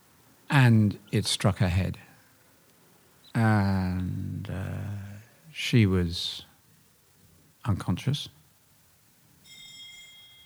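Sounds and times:
low background hum: 0.0s - 10.4s
speech: 0.6s - 2.0s, 3.4s - 4.0s, 5.6s - 6.5s, 7.7s - 8.4s
bell ringing with a bright sustained metallic tone: 9.4s - 10.4s.

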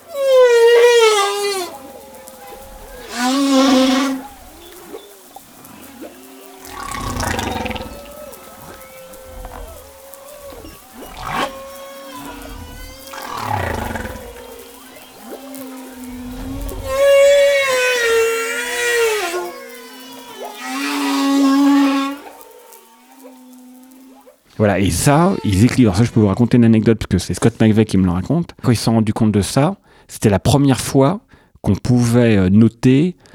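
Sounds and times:
watery underwater ambience: 0.0s - 25.4s
humpback whale song with moans, cries, grunts and pulses: 0.0s - 25.7s
speech: 24.6s - 33.3s.

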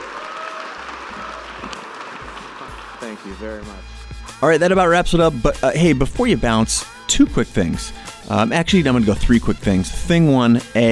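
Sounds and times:
audience applause: 0.0s - 3.8s
speech: 3.1s - 10.9s.

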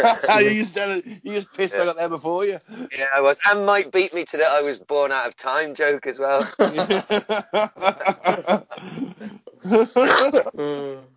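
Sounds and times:
laughter: 0.0s - 1.4s, 6.4s - 10.3s
speech: 0.0s - 11.1s
smoker's cough: 10.0s - 10.5s.

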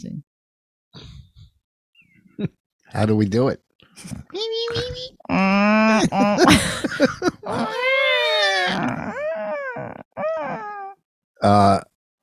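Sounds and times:
speech: 2.4s - 8.0s, 11.4s - 11.9s
person imitating a whale call: 5.3s - 6.5s, 7.5s - 11.8s
laughter: 5.9s - 8.9s.

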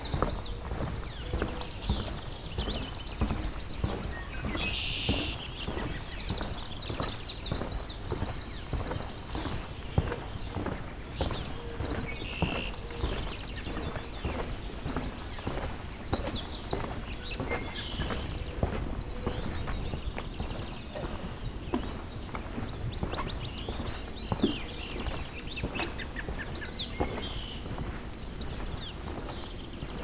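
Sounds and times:
swamp sparrow ringing trill song: 0.0s - 30.0s.

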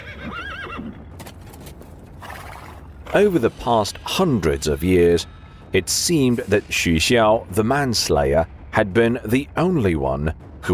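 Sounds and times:
horse whinnying as its rider reins in at a mountain archway: 0.0s - 1.1s
speech: 3.1s - 10.7s.

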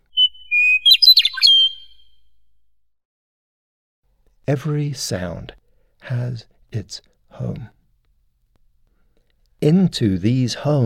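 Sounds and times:
meadowlark song: 0.0s - 2.5s
speech: 4.5s - 7.8s, 9.6s - 10.8s.

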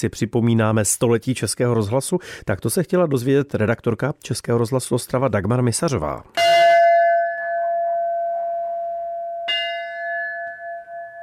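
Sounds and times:
speech: 0.0s - 6.7s
large bell rung for a birthday on a street by a kindergarten: 6.4s - 11.2s.

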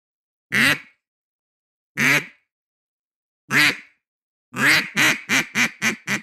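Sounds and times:
quacks blown on a duck call: 0.5s - 1.0s, 2.0s - 2.4s, 3.5s - 3.9s, 4.6s - 6.2s.

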